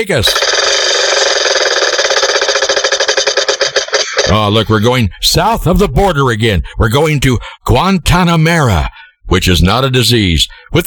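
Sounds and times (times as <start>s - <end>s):
speech: 0.0s - 1.0s, 4.3s - 10.8s
prize wheel spinning with rapid ratcheting clicks: 0.0s - 4.5s.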